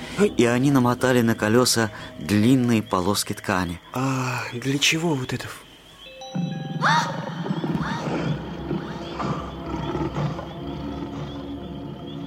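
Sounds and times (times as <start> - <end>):
speech: 0.2 - 5.7, 6.3 - 7.3
injured bear roaring: 7.4 - 11.9.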